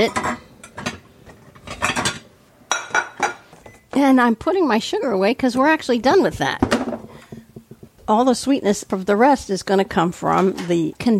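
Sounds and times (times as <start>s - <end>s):
speech: 0.0s - 0.3s, 4.0s - 6.7s, 8.1s - 11.1s
dishes and cookware clinking and clattering as a 9-inch pie plate is taken out: 0.0s - 4.0s, 6.5s - 8.0s.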